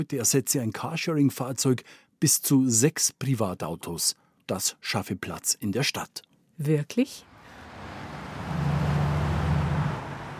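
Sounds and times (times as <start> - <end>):
speech: 0.0 - 7.3
city traffic rushing past a municipal high-rise on Blumenstraße in Munich: 7.2 - 10.3
deep engine rumble of a passing vehicle: 7.2 - 10.3.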